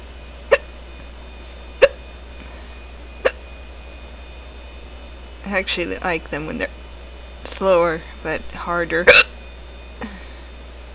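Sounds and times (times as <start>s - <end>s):
sharp abrupt hiccups: 0.5s - 0.7s, 1.8s - 2.0s, 9.1s - 9.3s
speech: 5.5s - 6.8s, 7.5s - 9.3s.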